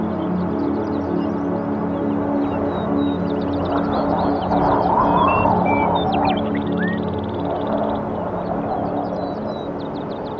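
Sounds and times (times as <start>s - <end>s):
birds chirping and whistling: 0.6s - 10.3s
wind rumbling: 3.4s - 10.3s
bird warbling call: 3.6s - 8.0s.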